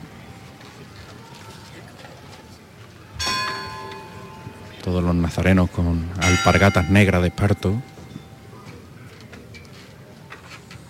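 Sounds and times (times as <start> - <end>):
church bell striking: 3.2 - 5.3, 6.2 - 8.6
speech: 4.9 - 7.9.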